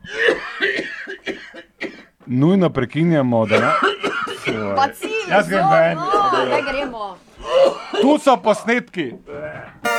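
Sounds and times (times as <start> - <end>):
harsh coughing fit: 0.0 - 2.2, 3.5 - 4.7
speech: 2.3 - 3.9, 4.5 - 9.3.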